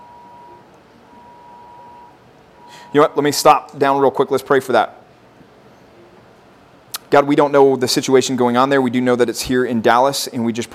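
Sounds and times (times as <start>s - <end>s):
phone emergency alert tone: 0.0s - 3.2s
noisy room background: 0.0s - 10.7s
speech: 2.9s - 5.0s, 7.1s - 10.7s.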